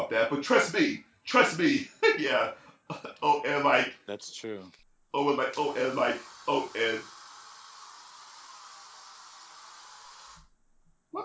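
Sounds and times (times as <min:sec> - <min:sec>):
speech: 0:00.1 - 0:07.2
aerosol air freshener being sprayed: 0:05.6 - 0:10.5.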